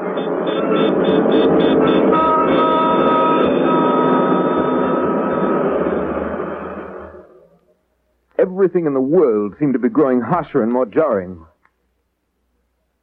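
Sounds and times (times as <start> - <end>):
subway train rumble with rhythmic clatter: 0.0 - 7.7
speech: 8.5 - 11.5.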